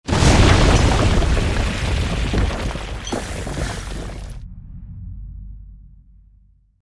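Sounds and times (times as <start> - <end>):
debris falling rocks: 0.0 - 4.4
large explosion: 0.0 - 5.7.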